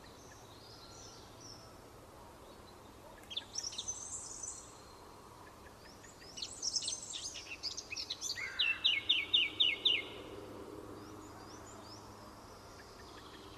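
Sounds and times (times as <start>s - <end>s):
Eurasian blackcap Sylvia atricapilla singing: 6.0s - 10.1s.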